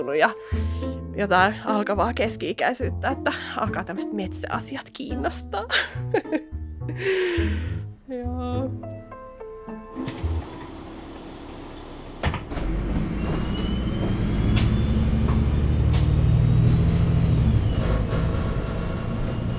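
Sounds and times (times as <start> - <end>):
speech: 0.0 - 8.9
low engine rumble inside a moving bus: 10.1 - 19.5
road noise inside a moving bus: 10.1 - 19.5.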